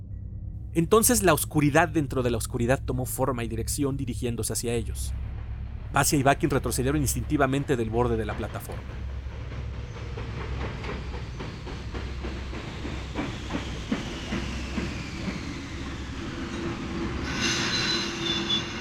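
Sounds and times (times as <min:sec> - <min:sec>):
speech: 0:00.7 - 0:05.2, 0:05.9 - 0:09.1
steam locomotive braking hard into a station: 0:07.6 - 0:18.7
hissing steam from a steam locomotive: 0:09.1 - 0:18.7
thin metallic squeal of a braking steam locomotive: 0:14.0 - 0:18.7.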